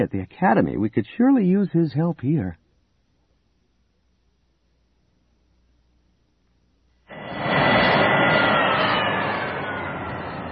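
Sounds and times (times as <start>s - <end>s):
speech: 0.0s - 2.6s
starfighter engine roar: 7.1s - 10.5s.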